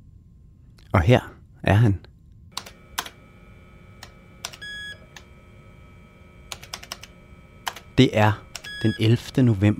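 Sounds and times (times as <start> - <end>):
steady low hum: 0.0 - 9.7
speech: 0.9 - 2.1, 8.0 - 9.7
typing on the keyboard of an Epson AX286 personal computer: 2.6 - 3.2, 4.0 - 5.3, 6.5 - 7.9, 8.5 - 9.4.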